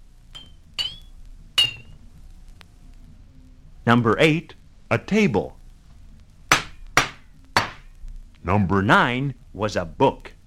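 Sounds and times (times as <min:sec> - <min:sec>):
empty glass bottle being tapped: 0:00.4 - 0:02.0
speech: 0:03.9 - 0:05.6, 0:08.5 - 0:10.4.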